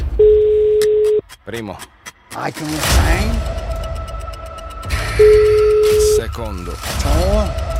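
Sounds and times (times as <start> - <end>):
telephone line ringing tone of an outgoing call: 0.2 - 1.2, 5.2 - 6.2
speech: 1.5 - 3.7, 4.8 - 5.6, 6.2 - 7.7.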